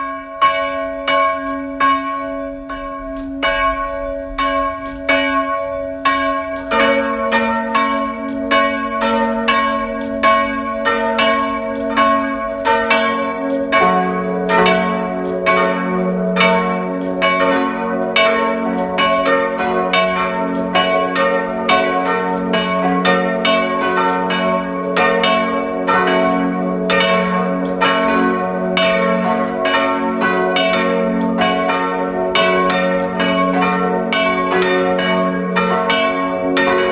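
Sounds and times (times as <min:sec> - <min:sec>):
church bells of an evangelical parish church ringing at noon in Lutzmannsburg Burgenland: 0:00.0 - 0:36.9.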